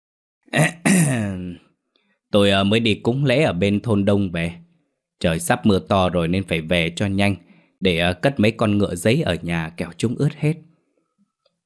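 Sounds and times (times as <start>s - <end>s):
speech: 0.5s - 1.6s, 2.3s - 4.6s, 5.2s - 10.7s
man clearing his throat: 0.6s - 1.6s.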